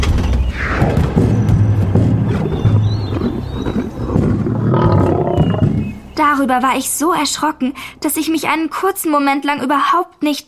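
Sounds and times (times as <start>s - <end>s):
low thuds: 0.8s - 6.1s
lion roaring: 2.2s - 5.9s
speech: 6.3s - 10.4s.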